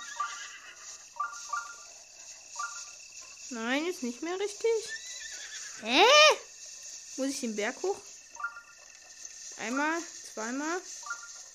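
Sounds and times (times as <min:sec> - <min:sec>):
horse whinnying in a video game: 0:00.0 - 0:01.1, 0:04.8 - 0:06.2
steady hiss: 0:00.0 - 0:11.5
speech: 0:03.5 - 0:05.0, 0:05.8 - 0:06.5, 0:07.2 - 0:08.1, 0:09.6 - 0:11.0.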